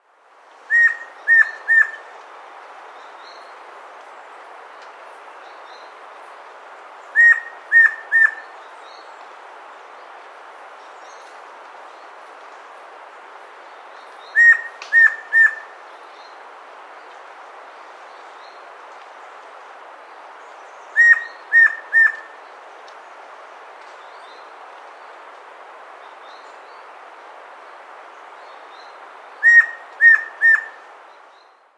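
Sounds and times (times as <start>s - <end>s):
Red-and-White Antpitta calling in South America: 0.7s - 2.1s, 7.1s - 8.6s, 14.3s - 15.8s, 20.9s - 22.4s, 29.4s - 30.8s.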